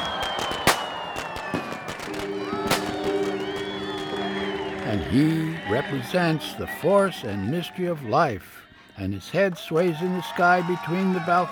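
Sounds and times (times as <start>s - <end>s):
firecrackers bursting at Chinese New Year street parade on Grant Avenue: 0.0s - 5.3s
steady horn-like tones: 0.0s - 8.0s
busy crowd at a street parade: 0.0s - 11.5s
laughter: 0.0s - 11.5s
speech: 5.1s - 11.5s.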